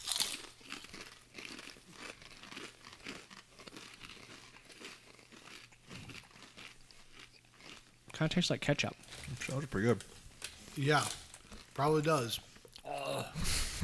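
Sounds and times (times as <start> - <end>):
bag of potato chips crinkling and crunching as it is handled: 0.0 - 7.8, 9.0 - 11.8
speech: 8.2 - 10.2, 10.8 - 11.2, 11.8 - 12.5.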